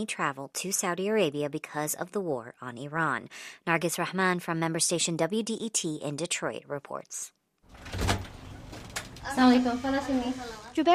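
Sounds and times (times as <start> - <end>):
speech: 0.0 - 8.0, 9.3 - 10.9
front door opening with rattling scrape and low thud: 7.7 - 10.5.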